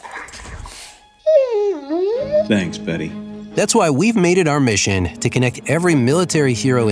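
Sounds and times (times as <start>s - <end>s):
dog whimpering with downward sliding pitch: 0.0s - 2.8s
speech: 2.5s - 6.9s.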